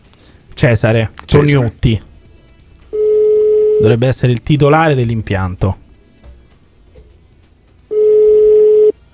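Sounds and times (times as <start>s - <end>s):
speech: 0.6s - 2.1s, 3.8s - 5.8s
telephone ringback tone of a call to a business: 2.9s - 4.0s, 7.9s - 9.0s.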